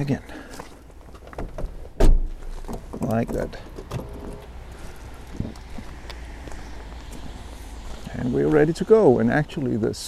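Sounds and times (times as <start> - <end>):
speech: 0.0 - 0.6, 3.1 - 3.7, 8.2 - 10.0
car door slamming shut: 2.0 - 2.4.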